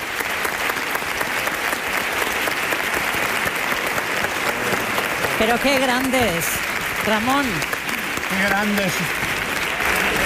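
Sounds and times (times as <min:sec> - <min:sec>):
large audience standing ovation applause: 0:00.0 - 0:10.2
speech: 0:05.4 - 0:09.2.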